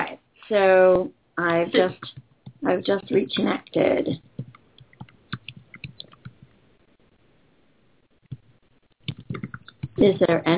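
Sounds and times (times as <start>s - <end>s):
speech: 0.5s - 4.3s, 10.0s - 10.5s
typing on a computer keyboard: 4.1s - 6.4s, 8.3s - 10.0s.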